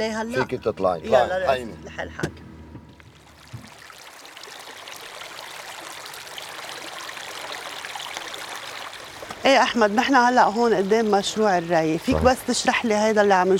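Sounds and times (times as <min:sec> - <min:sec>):
speech: 0:00.0 - 0:02.5, 0:09.4 - 0:13.5
sewage water flowing into an irrigation canal: 0:00.0 - 0:13.5.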